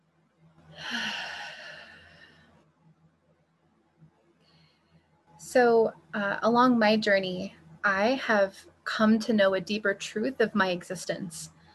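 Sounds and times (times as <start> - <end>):
deep breath taken together during a guided moment: 0.7 - 2.6
speech: 5.5 - 11.6.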